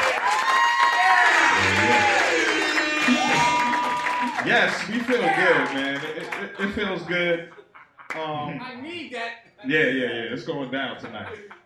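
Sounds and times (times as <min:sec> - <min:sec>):
audience whoops and shouts at a one-year anniversary celebration: 0:00.0 - 0:04.5
live audience clapping at a one-year anniversary celebration: 0:00.0 - 0:07.0, 0:08.0 - 0:08.3
laughter: 0:01.4 - 0:08.6, 0:10.5 - 0:11.6
speech: 0:04.4 - 0:11.6.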